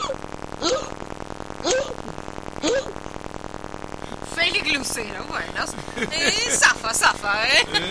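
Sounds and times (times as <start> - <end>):
sharp hiccups with a raspy cough-like edge: 0.0 - 3.1
low steady hum: 0.0 - 7.9
speech: 4.8 - 7.9
laughter: 5.6 - 7.9.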